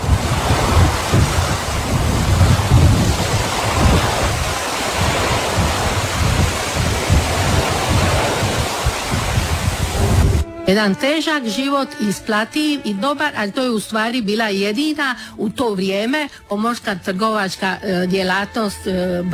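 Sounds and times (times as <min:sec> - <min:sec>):
constant rain on a sailing ship anchored in the channel near Gallipoli: 0:00.0 - 0:10.5
rushing Grego Tramontana wind: 0:00.0 - 0:10.6
surging water: 0:00.0 - 0:10.6
speech: 0:10.7 - 0:19.3.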